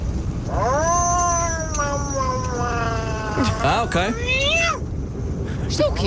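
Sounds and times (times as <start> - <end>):
steady low rumble: 0.0 - 6.0
agitated cat yowling: 0.5 - 4.8
speech: 3.6 - 4.4, 5.7 - 6.0.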